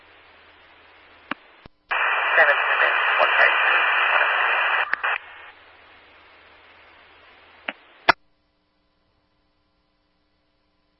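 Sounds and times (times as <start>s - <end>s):
harsh radio static: 0.2s - 8.2s
sharp clicks of a radio keying on and off: 1.3s - 5.4s, 7.6s - 8.2s
broken garbled radio transmission: 1.9s - 8.2s.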